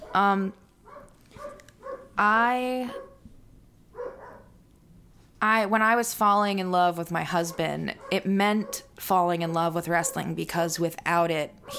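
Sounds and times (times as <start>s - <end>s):
speech: 0.2s - 0.6s, 2.2s - 3.0s, 5.4s - 11.7s
female dog barking: 0.9s - 2.2s, 2.9s - 3.2s, 3.9s - 4.6s, 7.5s - 8.9s.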